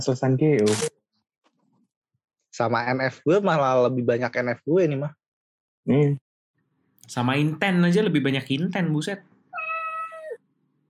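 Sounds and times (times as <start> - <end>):
speech: 0.0 - 1.0, 2.6 - 5.2, 5.8 - 6.2, 7.1 - 9.3
cat meowing: 9.5 - 10.4.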